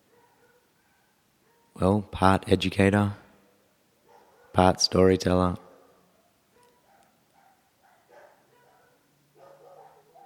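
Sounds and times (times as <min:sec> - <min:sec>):
dogs with partial dingo ancestry barking and yipping: 0:00.0 - 0:01.8, 0:04.0 - 0:04.6, 0:05.6 - 0:10.2
speech: 0:01.8 - 0:03.2, 0:04.6 - 0:05.6.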